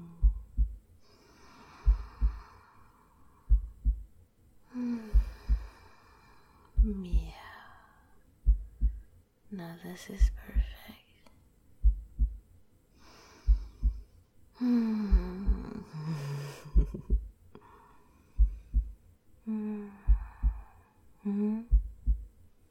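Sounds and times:
close heartbeat thumping in double beats: 0:00.0 - 0:00.8, 0:01.8 - 0:02.5, 0:03.4 - 0:04.1, 0:05.0 - 0:05.8, 0:06.8 - 0:07.6, 0:08.4 - 0:09.1, 0:10.2 - 0:10.9, 0:11.8 - 0:12.4, 0:13.5 - 0:14.1, 0:15.0 - 0:15.8, 0:16.6 - 0:17.3, 0:18.4 - 0:19.0, 0:20.0 - 0:20.7, 0:21.5 - 0:22.4
breathy gasps and sighs: 0:00.0 - 0:03.8, 0:04.7 - 0:06.9, 0:13.0 - 0:21.8
speech: 0:09.6 - 0:10.8.

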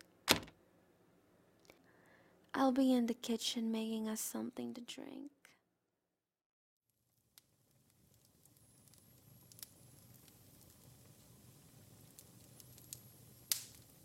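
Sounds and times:
speech: 0:02.6 - 0:05.4
fire crackling in a fireplace with pops and snaps: 0:06.9 - 0:14.0.

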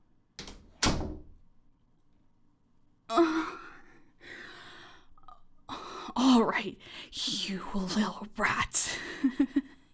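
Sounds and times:
door being shut: 0:00.4 - 0:01.3
speech: 0:06.6 - 0:09.8.

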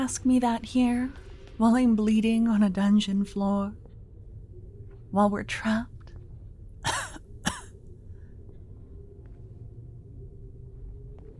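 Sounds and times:
speech: 0:00.0 - 0:03.8, 0:05.1 - 0:05.9
harsh coughs: 0:06.8 - 0:07.8.

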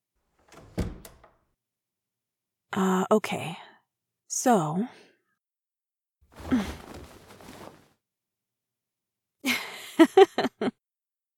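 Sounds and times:
door rattling as it settles: 0:00.2 - 0:01.5
door swinging closed with a solid thunk: 0:00.4 - 0:01.4
speech: 0:02.8 - 0:03.6, 0:04.3 - 0:05.0, 0:10.0 - 0:10.8
soft rustle of movement: 0:06.3 - 0:08.0.

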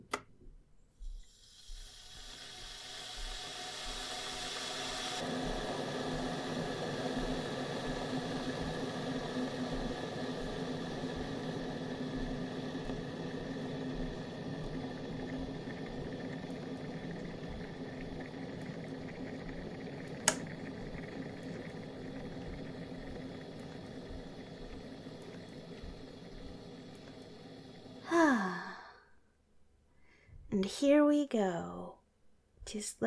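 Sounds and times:
electric kettle heating water for tea: 0:01.0 - 0:28.9
electric kettle switch click: 0:20.2 - 0:20.5
speech: 0:30.6 - 0:31.8, 0:32.7 - 0:33.0.

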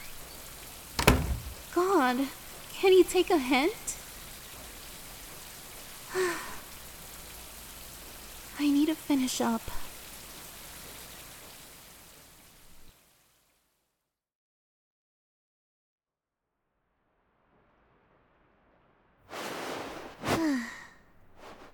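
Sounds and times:
shower water running: 0:00.0 - 0:13.1
speech: 0:02.1 - 0:04.0, 0:08.6 - 0:09.8
loud breathy sigh: 0:06.1 - 0:06.7, 0:20.2 - 0:21.1
soft rustle: 0:19.3 - 0:21.7.

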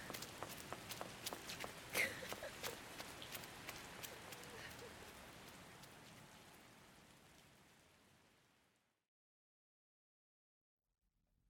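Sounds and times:
running footsteps: 0:00.0 - 0:06.6
soft rain-like hiss: 0:00.0 - 0:09.0.

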